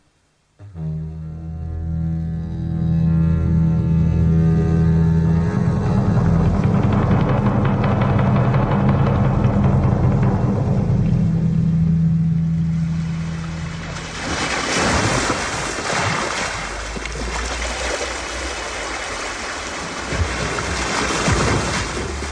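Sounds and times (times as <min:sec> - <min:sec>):
low steady hum: 0:00.0 - 0:20.8
sea waves surging and washing: 0:08.4 - 0:22.3.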